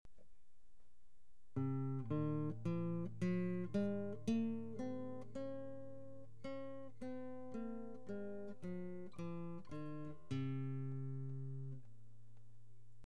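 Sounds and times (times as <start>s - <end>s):
classical guitar playing a scale: 1.6s - 11.9s.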